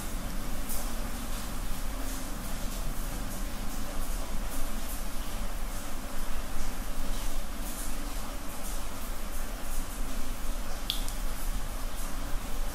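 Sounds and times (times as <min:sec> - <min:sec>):
steady dense rain: 0:00.0 - 0:12.7
bright water drips tapping: 0:10.9 - 0:11.2.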